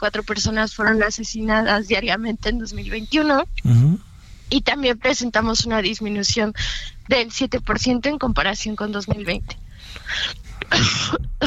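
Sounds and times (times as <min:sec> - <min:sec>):
speech: 0:00.0 - 0:11.4
person coughing: 0:10.1 - 0:11.4.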